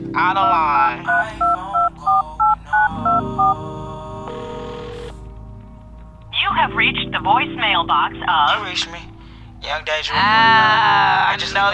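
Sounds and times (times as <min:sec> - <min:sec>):
speech: 0:00.2 - 0:01.7, 0:06.6 - 0:11.7
touch-tone beeps of a phone number being punched in: 0:00.4 - 0:03.6.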